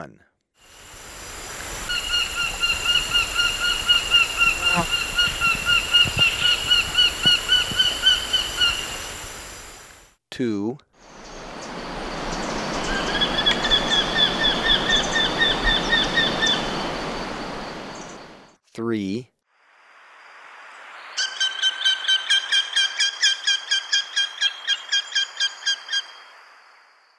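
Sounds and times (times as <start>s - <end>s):
Orange-breasted falcon calling in Ecuador: 1.7s - 9.3s, 12.5s - 18.4s, 21.2s - 26.3s.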